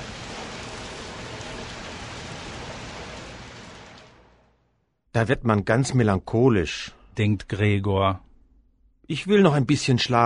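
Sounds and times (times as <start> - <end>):
steady rain pattering on surfaces: 0.0 - 4.8
speech: 5.2 - 8.3, 9.1 - 10.2.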